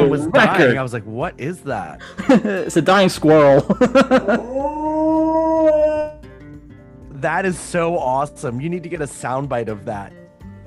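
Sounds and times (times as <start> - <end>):
speech: 0.1 - 6.0, 7.2 - 10.2
laughter: 2.1 - 2.8, 3.6 - 5.0
dog howling: 4.2 - 6.2.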